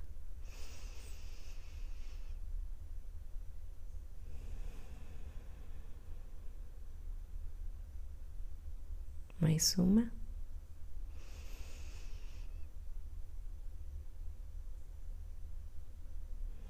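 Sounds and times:
low steady hum: 0:00.0 - 0:16.6
deep inhale and exhale during a guided exercise: 0:00.4 - 0:02.7, 0:04.1 - 0:07.4, 0:11.0 - 0:12.8, 0:16.2 - 0:16.6
speech: 0:09.4 - 0:10.2.

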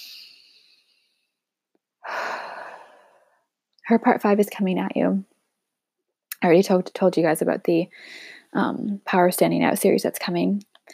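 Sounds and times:
person taking deep breaths: 0:02.0 - 0:03.4, 0:07.9 - 0:08.5
speech: 0:03.9 - 0:05.3, 0:06.4 - 0:10.9.

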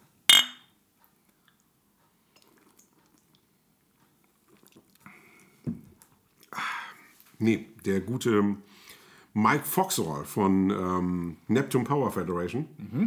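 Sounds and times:
beer glasses clinking in a toast: 0:00.3 - 0:00.7
speech: 0:07.4 - 0:13.0.

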